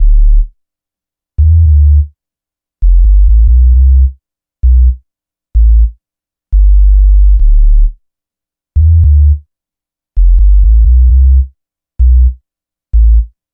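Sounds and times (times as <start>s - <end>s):
filthy bass loop: 0.0s - 0.5s, 1.4s - 2.1s, 2.8s - 5.0s, 5.6s - 5.9s, 6.6s - 8.0s, 8.8s - 9.4s, 10.2s - 12.4s, 13.0s - 13.3s.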